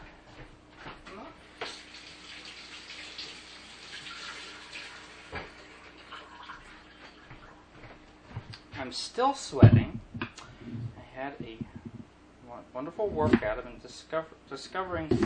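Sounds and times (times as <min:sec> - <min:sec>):
tap water running at a sink: 0:01.6 - 0:07.4
speech: 0:08.9 - 0:09.9, 0:11.2 - 0:11.7, 0:12.6 - 0:15.2.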